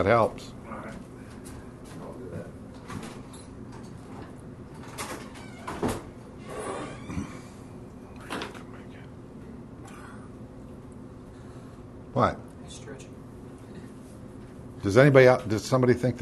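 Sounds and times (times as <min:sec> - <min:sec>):
speech: 0:00.0 - 0:00.6, 0:12.2 - 0:12.4, 0:14.8 - 0:16.2
steady low hum: 0:00.0 - 0:16.2
door opening and closing: 0:04.8 - 0:07.3.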